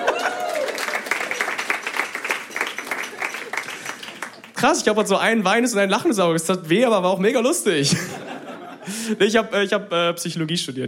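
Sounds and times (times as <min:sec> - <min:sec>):
laughter: 0:00.0 - 0:00.8, 0:07.8 - 0:09.3
person cheering: 0:00.0 - 0:01.4
audience applause: 0:00.0 - 0:04.6
speech: 0:04.6 - 0:08.2, 0:09.1 - 0:10.8.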